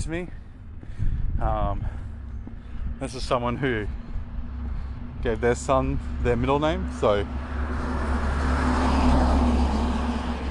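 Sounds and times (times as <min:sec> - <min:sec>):
speech: 0:00.0 - 0:00.4, 0:01.4 - 0:02.0, 0:03.0 - 0:04.0, 0:05.2 - 0:07.9
truck engine rumbling past: 0:03.3 - 0:10.4.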